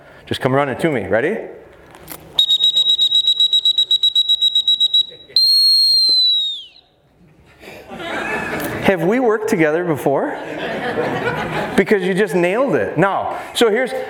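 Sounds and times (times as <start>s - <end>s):
speech: 0.3s - 1.6s, 8.9s - 14.0s
dog training whistle blasts: 2.4s - 6.9s
laughter: 4.9s - 5.5s, 7.6s - 8.9s, 10.2s - 12.0s.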